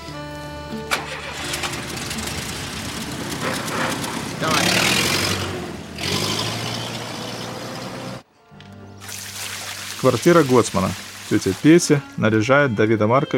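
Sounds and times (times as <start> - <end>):
car engine starting up: 0.7 - 8.3
speech: 10.0 - 13.3.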